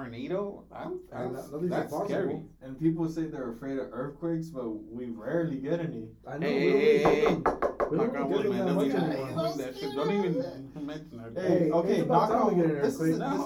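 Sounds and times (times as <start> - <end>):
speech: 0.0 - 13.4
sharp knocks on wood: 7.0 - 8.0.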